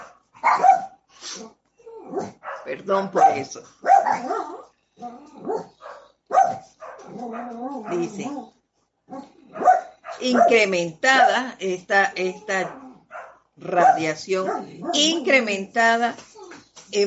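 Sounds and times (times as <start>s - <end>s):
small dog yipping and barking: 0.0s - 1.0s, 2.1s - 4.7s, 5.4s - 8.5s, 9.1s - 11.3s, 12.6s - 15.2s
speech: 2.7s - 5.7s, 7.2s - 9.3s, 10.2s - 12.8s, 13.6s - 16.3s.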